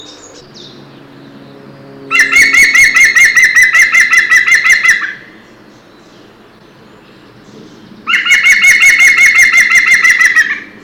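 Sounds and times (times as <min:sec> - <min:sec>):
male green woodpecker: 0:02.1 - 0:10.8.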